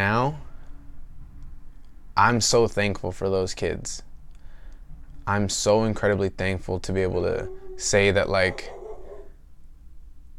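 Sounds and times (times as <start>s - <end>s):
speech: 0.0s - 0.4s, 2.2s - 4.1s, 5.3s - 8.8s
low steady room hum: 0.0s - 10.3s
female pet dog barking: 7.2s - 9.4s.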